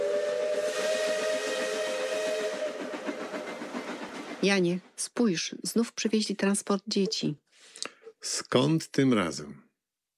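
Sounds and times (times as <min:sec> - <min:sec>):
distant steam train whistle: 0:00.0 - 0:04.4
steam train chugging: 0:00.0 - 0:06.3
speech: 0:04.4 - 0:07.4, 0:08.2 - 0:09.6.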